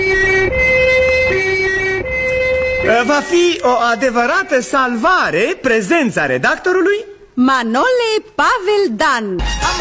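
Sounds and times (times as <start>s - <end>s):
two-tone ambulance siren: 0.0s - 4.6s
speech: 3.0s - 9.7s.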